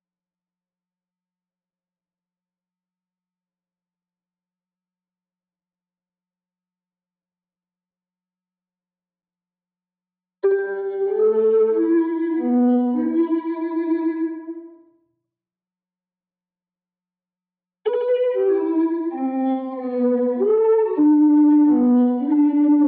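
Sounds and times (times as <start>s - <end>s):
romantic violin melody in E minor: 10.4s - 14.7s, 17.9s - 22.8s.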